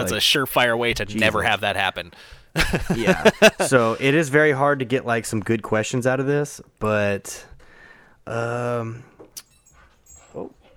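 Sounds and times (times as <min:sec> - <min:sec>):
speech: 0:00.0 - 0:07.5, 0:08.2 - 0:09.1, 0:10.3 - 0:10.6
laughter: 0:02.6 - 0:04.0
soft part-husky dog noises indoors: 0:09.5 - 0:10.7.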